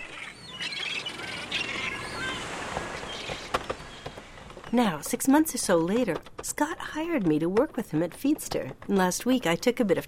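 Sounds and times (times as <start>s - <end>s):
seagulls calling at the beach: 0.0s - 5.1s
wind: 0.0s - 10.0s
surf: 0.6s - 4.8s
speech: 4.7s - 10.0s.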